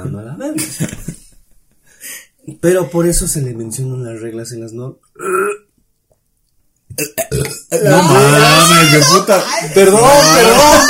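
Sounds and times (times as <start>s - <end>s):
speech: 0.0s - 1.1s, 2.5s - 5.6s, 7.0s - 10.8s
loud burp: 5.1s - 5.7s, 6.9s - 8.6s
laughter: 7.9s - 10.8s.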